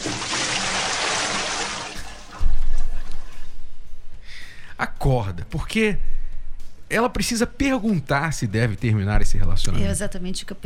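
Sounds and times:
cold water pouring and splashing from a bucket: 0:00.0 - 0:02.4
speech: 0:05.0 - 0:06.1, 0:06.9 - 0:10.6.

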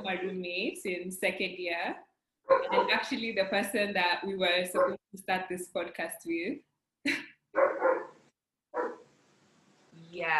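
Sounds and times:
speech: 0:00.0 - 0:07.2, 0:10.2 - 0:10.3
dog barking: 0:02.4 - 0:03.0, 0:04.8 - 0:05.0, 0:07.5 - 0:09.0.

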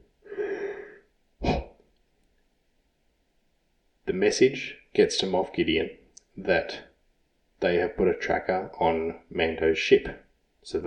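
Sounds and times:
person taking a breath: 0:00.0 - 0:01.6
speech: 0:04.1 - 0:06.9, 0:07.6 - 0:10.8.

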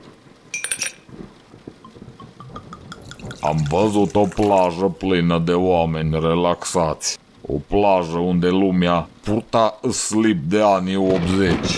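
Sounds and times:
soft handling noises: 0:00.0 - 0:01.2
drinking glass clinking: 0:00.6 - 0:01.1, 0:02.3 - 0:04.8
speech: 0:03.4 - 0:11.7.

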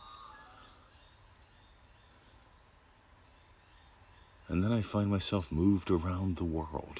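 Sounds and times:
bird chirps and short warbling calls outdoors in Australia: 0:00.0 - 0:06.9
speech: 0:04.5 - 0:06.9.

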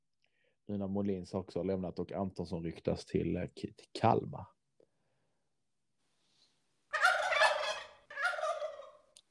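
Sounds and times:
speech: 0:00.7 - 0:04.6
turkey gobbling: 0:06.9 - 0:09.1.

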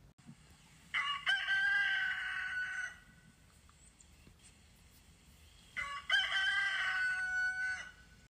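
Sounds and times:
low steady hum: 0:00.0 - 0:08.3
rooster crowing: 0:00.9 - 0:03.3, 0:05.8 - 0:08.2.

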